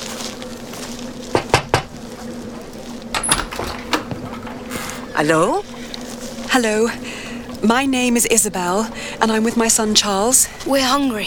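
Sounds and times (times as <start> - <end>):
low steady hum: 0.0 - 11.2
knocking on a stranger's door: 1.4 - 2.0
rattles: 3.1 - 6.4
speech: 5.2 - 5.7, 6.5 - 11.2.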